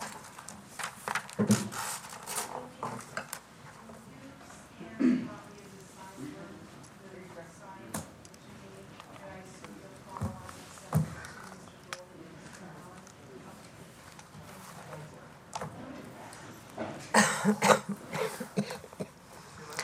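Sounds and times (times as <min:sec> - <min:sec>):
faint chatter: 0:00.0 - 0:19.8
person coughing: 0:05.0 - 0:05.4, 0:17.1 - 0:19.2.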